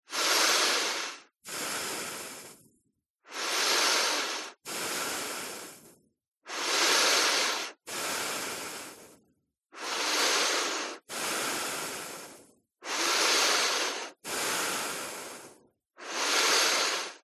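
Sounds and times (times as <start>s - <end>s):
person breathing through nose close up: 0.0s - 17.2s.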